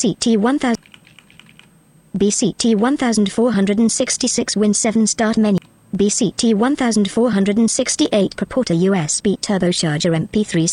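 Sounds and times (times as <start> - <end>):
fast speech: 0.0 - 0.8, 2.2 - 10.7
computer keys pressed for a keyboard shortcut: 0.7 - 1.7.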